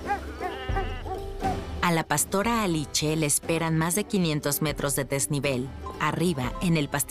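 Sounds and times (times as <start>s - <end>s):
flock of sheep bleating: 0.2s - 1.2s
speech: 2.0s - 7.0s.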